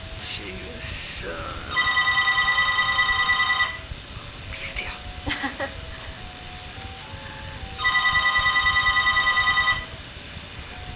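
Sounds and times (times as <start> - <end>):
cell phone ringing with a warbling electronic trill: 1.7 - 3.9, 7.5 - 10.0.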